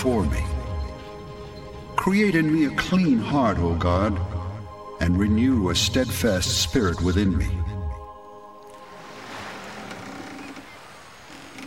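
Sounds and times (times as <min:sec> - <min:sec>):
speech: 0:00.0 - 0:00.5, 0:02.0 - 0:04.3, 0:05.0 - 0:07.6
waves washing and surging around a moving boat: 0:08.6 - 0:11.6.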